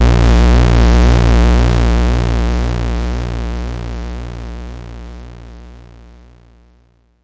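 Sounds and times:
bass note A sharp: 0:00.0 - 0:05.7.

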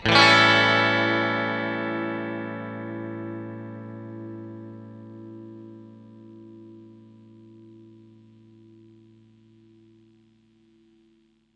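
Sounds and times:
clean electric guitar A chord: 0:00.0 - 0:11.5.

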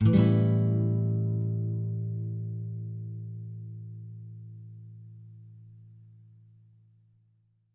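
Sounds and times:
nylon guitar A augmented sixth chord: 0:00.0 - 0:05.2.

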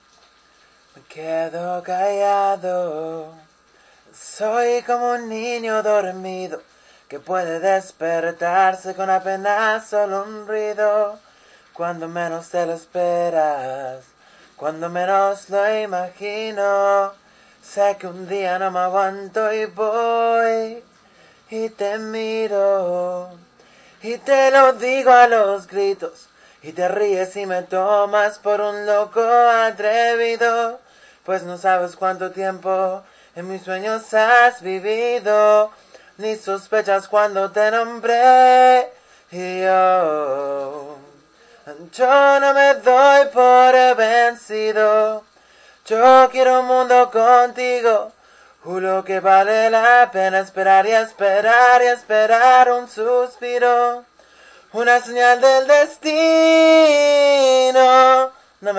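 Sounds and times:
amateur a cappella Spanish ballad singing: 0:00.4 - 0:58.7.

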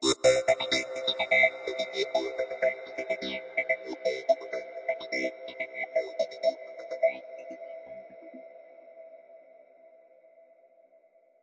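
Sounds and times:
space banjo synth loop: 0:00.0 - 0:06.7.

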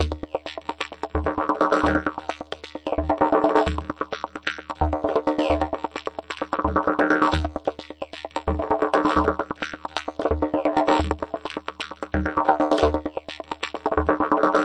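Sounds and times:
didgeridoo rolling: 0:00.0 - 0:14.6.

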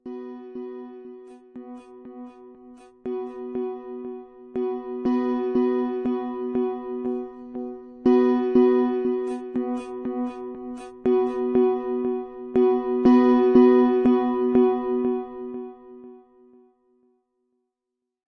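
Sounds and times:
C sharp major chord strummed with echo: 0:00.0 - 0:16.5.

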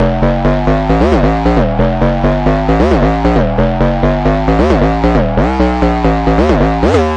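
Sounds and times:
twisty synth bass loop climbing up and down: 0:00.0 - 0:07.1.

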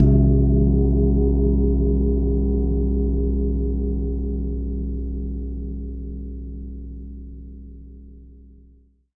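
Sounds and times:
long gong single hit: 0:00.0 - 0:05.3.

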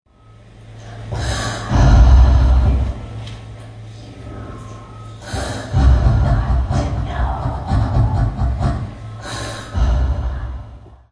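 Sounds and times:
woman breathing breathily: 0:00.8 - 0:03.0, 0:04.8 - 0:06.8, 0:08.0 - 0:11.1.

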